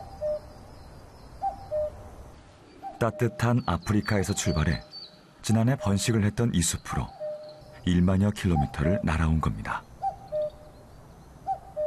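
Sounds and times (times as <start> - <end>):
common cuckoo calling: 0.0 - 2.0, 2.7 - 11.8
speech: 3.0 - 7.2, 7.8 - 9.9.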